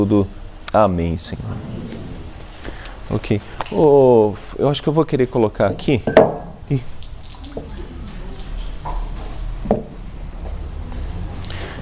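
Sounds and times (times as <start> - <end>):
speech: 0.0 - 1.7, 3.1 - 6.9
low hum: 0.0 - 11.8
glass clinks and taps: 6.1 - 6.4
water sloshing and dripping in a drinking glass: 6.8 - 9.4.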